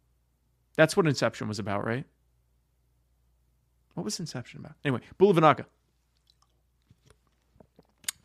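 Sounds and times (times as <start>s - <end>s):
speech: 0.8s - 2.2s, 4.0s - 5.8s
person sipping water with wet slurps and swallows: 6.1s - 8.2s.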